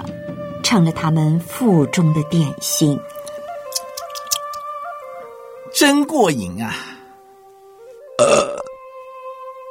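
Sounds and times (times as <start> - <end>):
speech: 0.6 - 3.2, 5.8 - 6.9
loud satisfied burp: 8.2 - 8.8.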